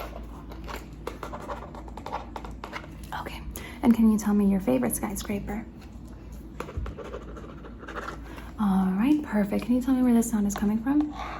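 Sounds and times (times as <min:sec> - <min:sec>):
pen or pencil scratching on paper writing in a notepad: 0:01.0 - 0:02.3, 0:06.6 - 0:08.2
speech: 0:03.9 - 0:05.8, 0:09.3 - 0:11.3.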